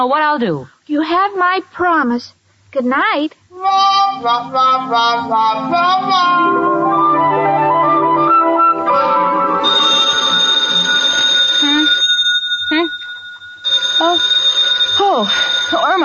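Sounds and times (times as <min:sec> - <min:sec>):
speech: 0:00.0 - 0:07.3
music-like tones: 0:03.6 - 0:11.6
telephone ringing: 0:08.9 - 0:16.0.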